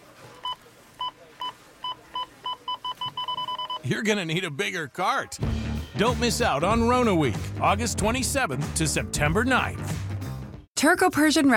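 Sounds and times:
store checkout scanner beeping: 0:00.3 - 0:04.0
speech: 0:03.8 - 0:10.0, 0:10.8 - 0:11.5.

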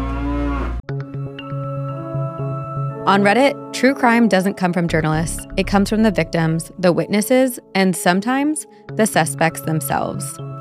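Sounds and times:
cow mooing: 0:00.0 - 0:00.8
rhythmic plucked music with a steady beat: 0:00.9 - 0:10.5
speech: 0:03.1 - 0:10.5.

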